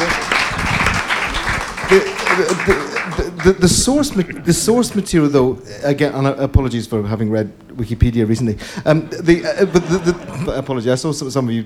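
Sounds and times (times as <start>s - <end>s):
audience applause: 0.0s - 5.1s
laughter: 1.4s - 5.2s, 8.6s - 11.0s
speech: 1.9s - 11.6s.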